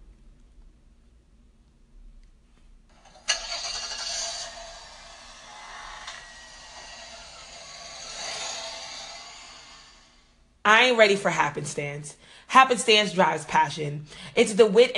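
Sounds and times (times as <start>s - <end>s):
car engine starting and running: 2.9s - 10.4s
speech: 10.7s - 14.9s.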